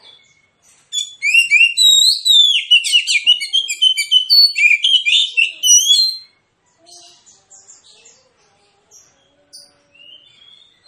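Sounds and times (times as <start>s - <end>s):
Oriental magpie-robin aggressive fighting-style song: 0.0s - 6.4s.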